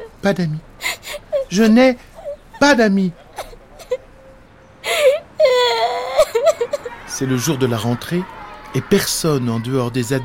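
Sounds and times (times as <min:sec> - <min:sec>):
boy crying and whimpering going from sidewalk to sidewalk: 0:00.0 - 0:02.6, 0:03.3 - 0:04.2, 0:04.8 - 0:07.0
speech: 0:00.2 - 0:00.7, 0:01.5 - 0:03.2, 0:07.2 - 0:10.2.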